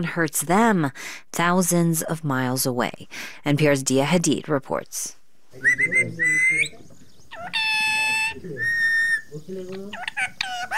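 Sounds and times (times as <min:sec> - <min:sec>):
speech: 0:00.0 - 0:07.7, 0:08.4 - 0:10.7
pet parrot on a balcony perch squawking and whistling in Dambagula village, Sri Lanka: 0:05.6 - 0:10.7.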